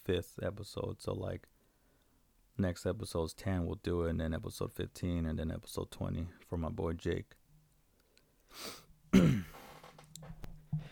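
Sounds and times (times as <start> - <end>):
speech: 0.0 - 1.6, 2.6 - 7.4, 8.5 - 9.5
faint breathing: 1.6 - 2.3, 8.0 - 8.9
wet nasal sniffing from a person with a runny nose: 8.5 - 8.9.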